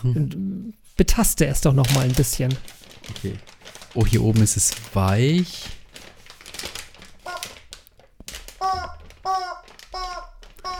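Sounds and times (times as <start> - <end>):
speech: 0.0 - 5.8
Christmas wrapping paper crinkling around a cylindrical package: 1.4 - 10.7
loud squeaky honking bursts: 8.6 - 10.7.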